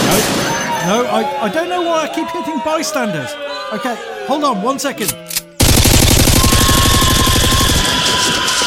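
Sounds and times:
speech: 0.1 - 5.3
video game machine gun fire: 5.6 - 8.3
video game noise: 5.6 - 8.5.

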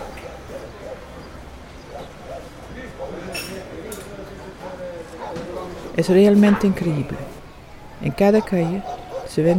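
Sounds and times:
chatter on an outdoor café terrace: 0.0 - 9.5
dishes and glassware clinking on an outdoor café terrace: 3.3 - 4.1
speech: 6.0 - 7.3, 8.0 - 9.5.

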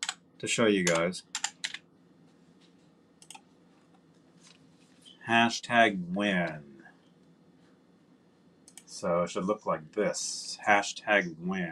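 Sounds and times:
low steady hum: 0.0 - 11.7
speech: 0.4 - 1.5, 5.3 - 6.7, 9.0 - 11.7
typing on a computer keyboard: 0.8 - 1.8.

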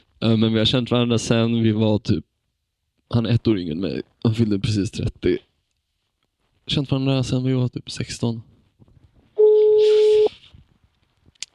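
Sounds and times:
speech: 0.2 - 2.3, 3.1 - 5.5, 6.7 - 8.5
telephone ringback tone: 9.4 - 10.3.

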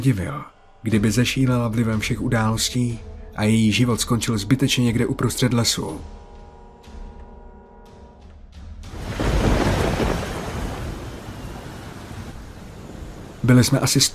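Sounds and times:
speech: 0.0 - 6.2, 13.4 - 14.1
low musical tone: 0.0 - 11.0
thunder rumbling in a thunderstorm: 8.8 - 14.1.

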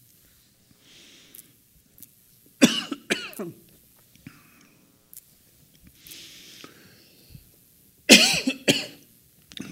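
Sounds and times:
breathing: 0.2 - 1.6, 4.2 - 5.0, 6.0 - 7.6
person coughing in sharp harsh bursts: 2.6 - 3.6, 8.1 - 9.0.

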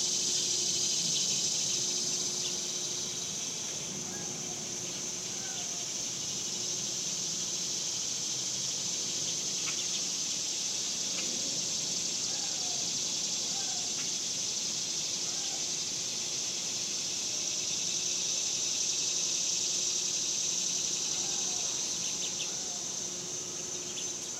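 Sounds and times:
several cicadas droning outdoors in summer in a suburban area: 0.0 - 24.3.

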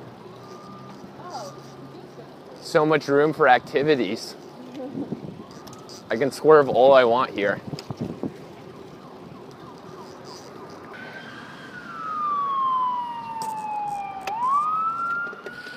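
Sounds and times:
ambulance siren wailing on a city street: 0.0 - 2.8, 3.4 - 15.7
city street traffic hum: 0.0 - 15.7
speech: 2.7 - 4.4, 6.1 - 7.8.

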